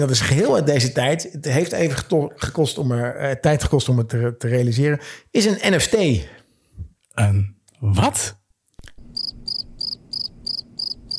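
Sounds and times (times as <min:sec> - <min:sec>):
speech: 0:00.0 - 0:06.4, 0:07.2 - 0:08.4
cricket chirping: 0:09.1 - 0:11.1.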